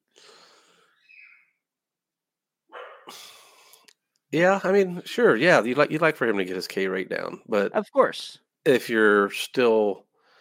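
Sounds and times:
dogs barking in short harsh bursts: 0:02.7 - 0:03.1
speech: 0:03.1 - 0:03.3, 0:04.3 - 0:10.1.

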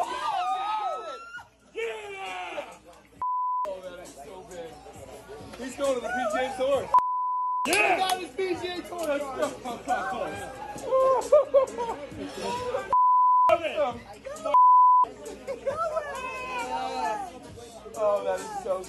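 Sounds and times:
group of excited friends shouting and cheering: 0:00.0 - 0:03.2, 0:05.6 - 0:07.0, 0:07.6 - 0:18.8
high censor bleeps: 0:03.2 - 0:03.7, 0:07.0 - 0:07.7, 0:13.0 - 0:13.5, 0:14.6 - 0:15.1
speech: 0:05.6 - 0:07.0, 0:07.6 - 0:12.9, 0:13.8 - 0:14.6, 0:18.0 - 0:18.8
laughter: 0:09.4 - 0:13.0, 0:15.1 - 0:16.6.

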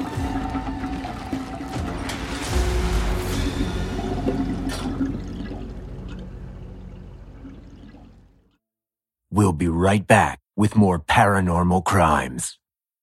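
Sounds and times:
water draining down a bathtub drain after a blocked pipe is cleared: 0:00.0 - 0:08.5
speech: 0:09.4 - 0:12.6.

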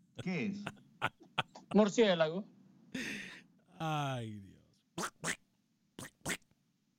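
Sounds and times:
laughter: 0:00.2 - 0:02.0, 0:03.0 - 0:03.4
speech: 0:00.2 - 0:03.2, 0:03.8 - 0:05.4
raspy duck quacking: 0:05.0 - 0:05.4, 0:06.0 - 0:06.4.

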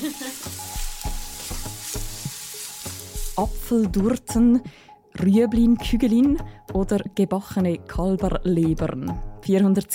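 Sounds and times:
onions frying in butter: 0:00.0 - 0:03.7
speech: 0:03.4 - 0:09.9.

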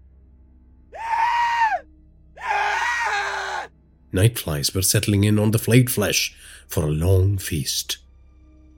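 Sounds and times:
old man screaming in horror: 0:01.0 - 0:01.8, 0:02.4 - 0:03.7
speech: 0:04.1 - 0:08.0.

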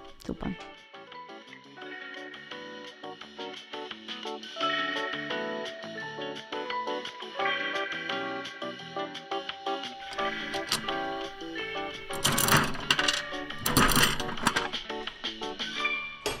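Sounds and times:
music: 0:00.0 - 0:16.3
speech: 0:00.3 - 0:00.8
gumball machine crank ratcheting and clicking: 0:10.1 - 0:16.3.

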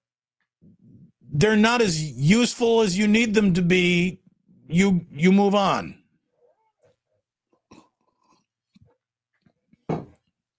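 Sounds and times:
speech: 0:00.6 - 0:06.0
person sipping a hot drink: 0:07.5 - 0:09.0.

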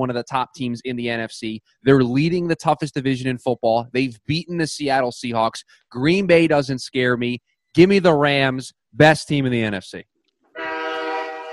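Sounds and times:
speech: 0:00.0 - 0:10.1
train horn blaring: 0:10.6 - 0:11.5.

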